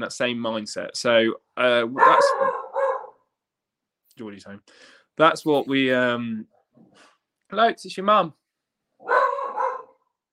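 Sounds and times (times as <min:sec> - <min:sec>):
speech: 0:00.0 - 0:02.6, 0:04.2 - 0:08.4, 0:09.0 - 0:09.2
dog barking at the back door of a home: 0:02.0 - 0:03.2, 0:09.0 - 0:10.1.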